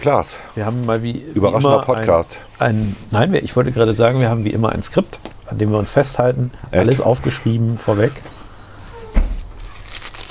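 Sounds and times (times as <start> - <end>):
speech: 0.0 - 8.4
soft plastic tissue packet wrapper crinkling: 3.4 - 10.2
low thump: 9.1 - 9.6.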